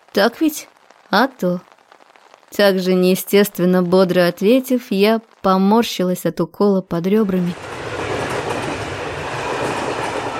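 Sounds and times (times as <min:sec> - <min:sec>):
speech: 0:00.2 - 0:01.7, 0:02.5 - 0:07.8
passenger train arriving at a station: 0:07.5 - 0:10.3
train wheels clickety-clack on the rails: 0:07.5 - 0:10.3.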